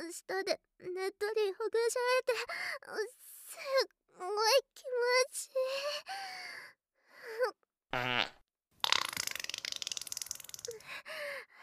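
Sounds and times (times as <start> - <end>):
speech: 0.2 - 8.4
long sputtering fart: 7.9 - 10.7.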